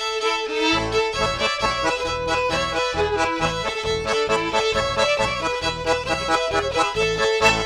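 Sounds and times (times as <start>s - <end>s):
polka music: 0.2s - 7.6s.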